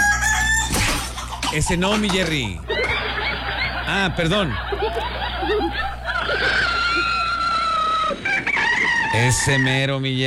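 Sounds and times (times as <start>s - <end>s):
rooster crowing: 0.0s - 0.8s, 5.9s - 9.8s
steady low hum: 0.0s - 10.2s
laughter: 1.2s - 9.8s
speech: 1.5s - 2.7s, 3.9s - 7.1s, 9.1s - 10.2s.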